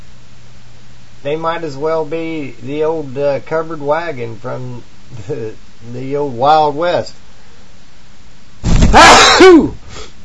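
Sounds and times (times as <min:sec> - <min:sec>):
speech: 0:01.2 - 0:07.2, 0:08.9 - 0:09.8
person sneezing: 0:08.6 - 0:10.2.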